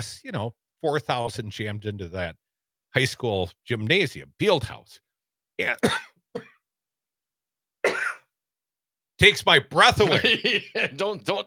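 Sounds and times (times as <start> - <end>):
speech: 0.0 - 5.0, 5.6 - 6.5, 9.2 - 11.4
man coughing while choking on his own saliva: 5.8 - 6.6, 7.8 - 8.3, 10.1 - 11.1
laughter: 9.9 - 11.4.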